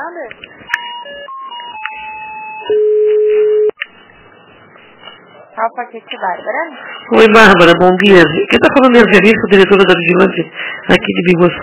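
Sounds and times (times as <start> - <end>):
speech: 0.0 - 0.8, 5.6 - 11.6
telephone beeps while a call is transferred: 0.7 - 3.8.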